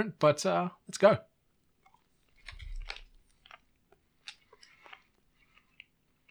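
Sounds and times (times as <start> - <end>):
speech: 0.0 - 1.3
wet chewing of soft sticky sour watermelon-flavoured chewy candy cubes: 1.6 - 6.2.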